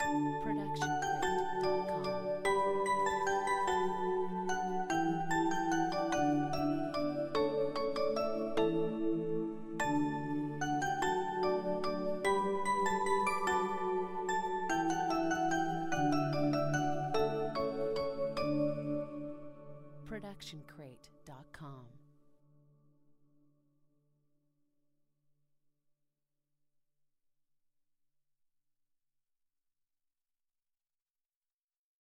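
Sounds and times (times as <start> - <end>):
christmas jingle: 0.0 - 19.4.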